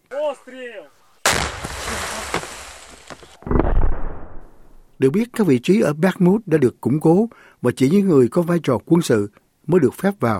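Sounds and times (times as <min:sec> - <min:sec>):
artillery shelling explosions: 0:01.3 - 0:04.8
speech: 0:05.0 - 0:10.3.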